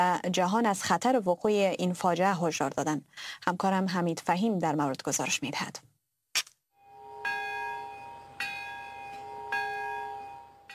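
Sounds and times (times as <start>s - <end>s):
speech: 0.0s - 5.9s
large memorial bell tolling: 6.8s - 10.7s.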